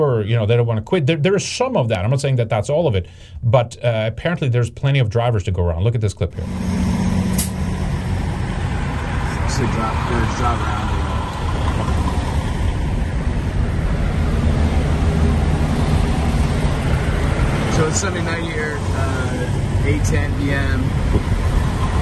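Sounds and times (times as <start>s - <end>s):
speech: 0.0s - 7.0s, 9.6s - 11.0s, 17.8s - 21.4s
low rumble of idling trucks at a truck stop: 6.4s - 22.0s.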